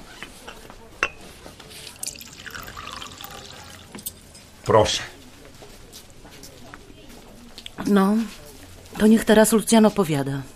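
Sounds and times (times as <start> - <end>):
cup clink: 0.5 - 1.3, 1.9 - 4.5
tea pouring into a cup: 1.8 - 4.2
speech: 4.7 - 5.1, 7.8 - 8.4, 9.0 - 10.5.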